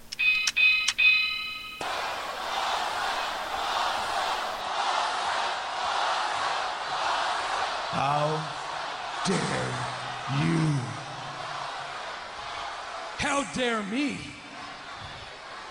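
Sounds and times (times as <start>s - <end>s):
bright doorbell-like bell ringing ding-dong: 0.1s - 1.8s
steady noisy crowd-like roar: 1.8s - 13.5s, 14.4s - 15.6s
speech: 9.2s - 10.8s, 13.4s - 14.3s.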